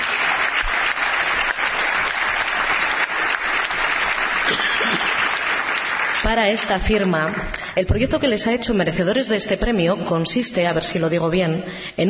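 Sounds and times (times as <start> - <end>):
audience applause for business award winner: 0.0 - 7.7
speech: 6.3 - 12.0.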